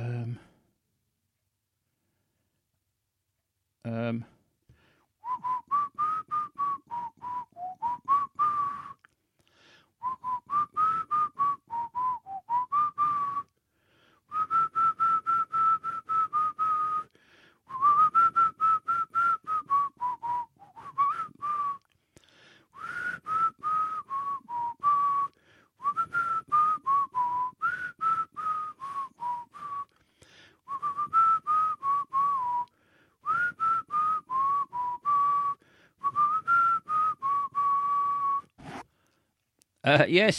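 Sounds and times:
speech: 3.8s - 4.4s, 39.9s - 40.3s
person whistling a bouncy TV theme tune: 5.2s - 9.2s, 10.0s - 13.6s, 14.3s - 22.0s, 22.7s - 38.8s.

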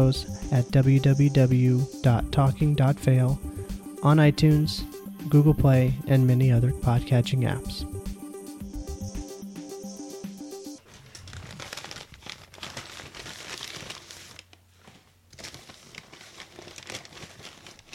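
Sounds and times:
speech: 0.0s - 7.9s
brief musical opening: 0.0s - 10.8s
paper bag crinkling: 10.8s - 17.9s.

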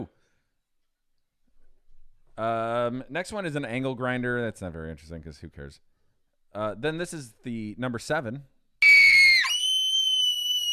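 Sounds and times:
speech: 2.4s - 5.9s, 6.5s - 8.5s
woman screaming: 8.8s - 10.7s.

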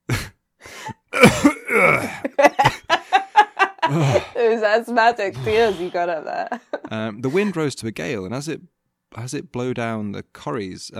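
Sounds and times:
person imitating a deer's cough: 1.1s - 2.4s, 3.9s - 4.4s
laughter: 2.1s - 4.4s, 5.3s - 7.6s
speech: 4.7s - 10.9s.

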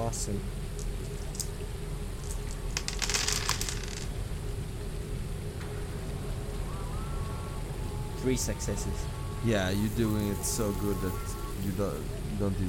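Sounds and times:
steady low hum: 0.0s - 12.6s
speech: 0.1s - 0.6s, 8.2s - 12.6s
dice clattering during a tabletop game roll: 2.2s - 4.1s.

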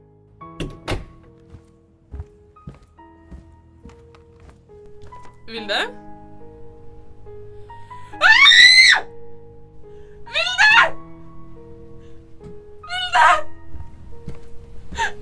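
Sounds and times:
speech: 5.5s - 6.0s
woman screaming and wailing: 8.2s - 9.0s, 10.3s - 11.0s, 12.9s - 13.6s.

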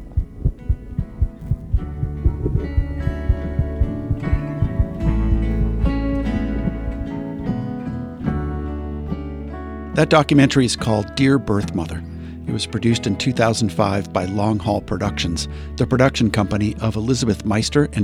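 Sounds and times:
heartbeat picked up by a worn microphone during a hug: 0.0s - 7.9s
rustling: 0.0s - 8.2s
low hum: 0.0s - 9.2s
speech: 10.0s - 18.0s.

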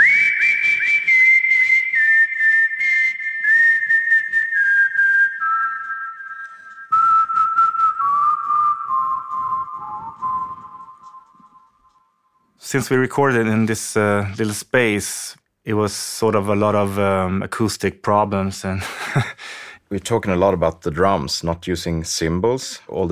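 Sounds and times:
person whistling a slow sustained melody: 0.0s - 12.1s
speech: 12.7s - 23.1s.

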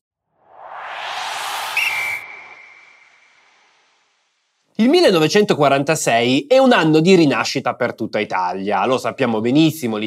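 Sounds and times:
loud airy whoosh in a podcast intro sting: 0.4s - 4.3s
steady high whistling tone in a podcast intro sting: 0.5s - 4.2s
speech: 4.8s - 10.0s.

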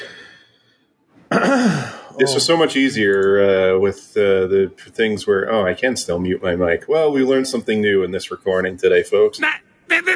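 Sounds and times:
person coughing: 1.3s - 2.1s
speech: 1.4s - 10.1s.

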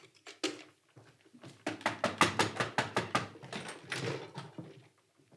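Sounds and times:
sharp knocks on a door: 1.7s - 3.4s.

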